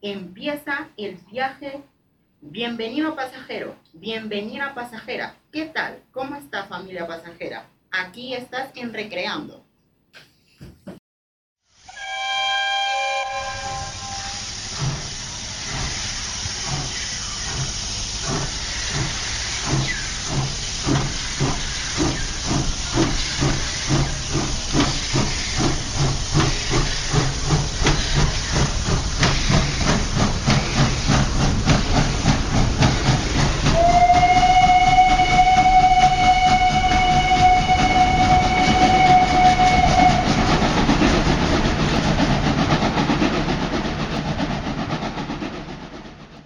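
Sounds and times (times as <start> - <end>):
speech: 0.0 - 10.3
steam train whistle: 11.8 - 14.8, 33.7 - 40.6
steam train hissing steam: 13.3 - 45.5.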